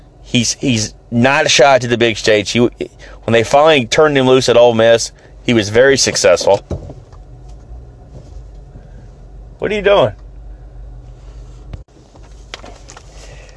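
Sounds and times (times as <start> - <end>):
car engine drone: 0.0 - 13.5
low road rumble inside a moving car: 0.0 - 13.5
speech: 0.3 - 6.9, 9.6 - 10.2
dull knock: 6.6 - 7.1.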